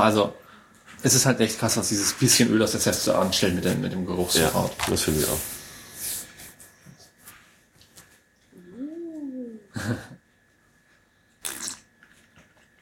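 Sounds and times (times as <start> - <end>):
speech: 0.0 - 0.4, 1.0 - 5.6, 9.9 - 10.1
person humming mmm of appreciation: 8.6 - 10.2
slurping and wet lip-smacking tasting gin: 11.4 - 11.9.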